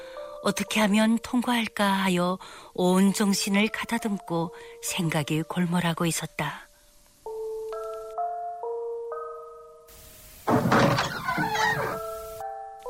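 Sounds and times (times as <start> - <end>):
speech: 0.4 - 6.7, 10.5 - 11.6
door opening with rattling creaking noise: 10.4 - 12.4.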